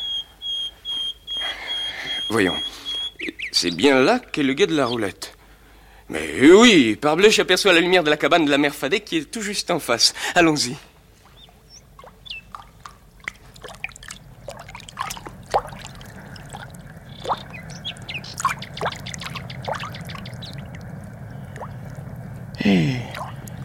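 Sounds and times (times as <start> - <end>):
speech: 2.3 - 5.4, 6.1 - 10.9
water trickling and pouring through canal locks at night: 11.2 - 23.6.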